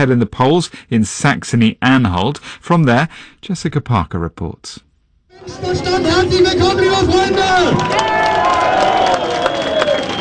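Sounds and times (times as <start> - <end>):
speech: 0.0 - 8.8
people shouting at a political rally: 5.4 - 10.0
dense crowd roaring and cheering at a far-right political rally outdoors: 5.4 - 10.1
scattered clapping at a political rally: 6.9 - 10.1
whistles at a political rally: 8.8 - 10.1.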